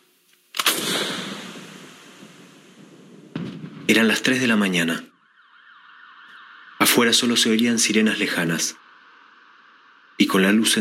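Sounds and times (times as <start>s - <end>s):
gunshot sound effect: 0.6s - 4.7s
speech: 3.9s - 5.1s, 7.0s - 8.8s, 10.2s - 10.8s.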